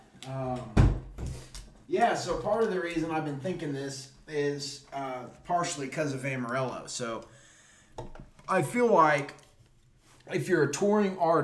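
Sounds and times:
speech: 0.2 - 0.8, 1.9 - 7.4, 8.0 - 9.4, 10.3 - 11.4
door thudding shut: 0.6 - 1.4.

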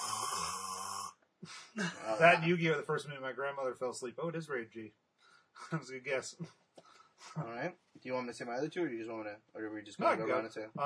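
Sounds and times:
voice imitating a mother's loud snore: 0.0 - 1.2
speech: 1.4 - 5.0, 5.6 - 6.6, 7.2 - 10.8.

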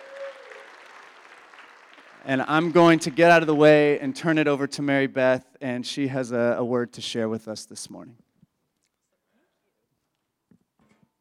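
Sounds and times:
congregation applauding: 0.0 - 4.2
speech: 2.2 - 8.3.

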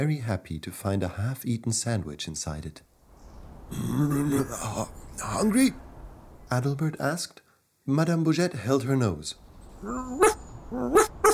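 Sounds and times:
speech: 0.0 - 2.9, 3.7 - 5.9, 6.5 - 11.1
dog barking: 9.8 - 11.3.

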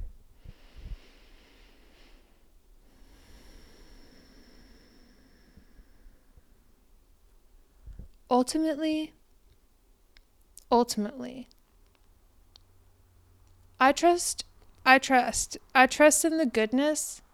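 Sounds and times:
slow deep breath: 0.3 - 7.1
speech: 8.4 - 9.2, 10.7 - 11.6, 13.8 - 17.2.

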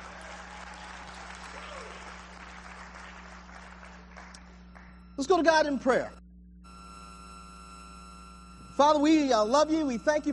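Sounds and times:
room full of people applauding: 0.0 - 4.9
low electrical hum: 0.0 - 10.3
speech: 5.2 - 6.2, 8.8 - 10.3.

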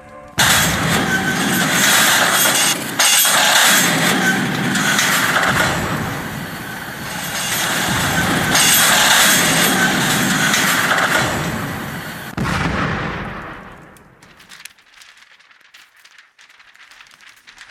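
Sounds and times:
train cars crashing down: 0.3 - 17.6
train cars thundering past with metallic clatter: 0.4 - 12.4.

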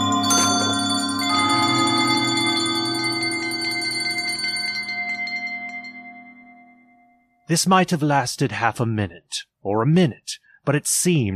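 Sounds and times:
several house bells ringing loudly together: 0.0 - 7.4
speech: 7.5 - 11.3.

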